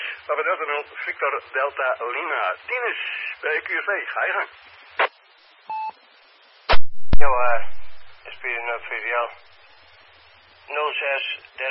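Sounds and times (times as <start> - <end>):
voice over the phone: 0.0 - 4.6, 7.2 - 9.4, 10.7 - 11.6
speech: 0.3 - 5.1, 7.2 - 9.5, 10.7 - 11.6
two-tone telephone beep: 5.7 - 6.0
burst of noise: 6.7 - 9.6.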